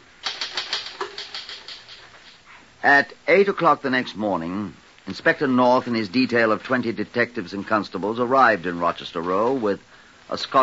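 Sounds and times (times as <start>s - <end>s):
typewriter typing: 0.2s - 2.4s
speech: 2.8s - 10.6s.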